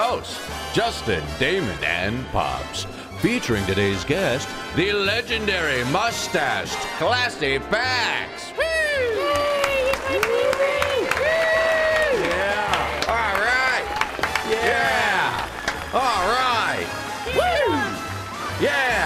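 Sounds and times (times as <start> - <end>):
speech: 0.1 - 9.4
excited shouting voices: 8.5 - 19.0
lively crowd clapping: 8.7 - 19.0.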